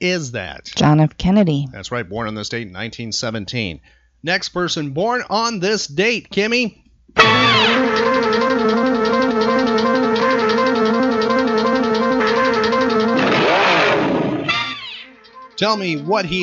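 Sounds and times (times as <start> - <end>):
speech: 0.0 - 9.8, 15.6 - 16.4
race car engine revving at high revs: 7.2 - 14.8.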